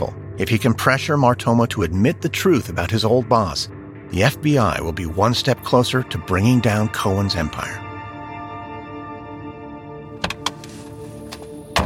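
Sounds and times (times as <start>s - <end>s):
speech: 0.0s - 7.8s
car door unlatching clicks: 10.2s - 11.8s.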